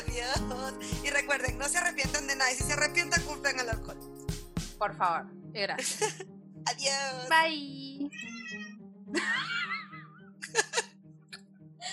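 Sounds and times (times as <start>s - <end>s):
speech: 0.2s - 4.2s, 4.8s - 9.8s
laughter: 5.8s - 6.2s, 9.1s - 10.9s
cat meowing: 8.1s - 8.8s.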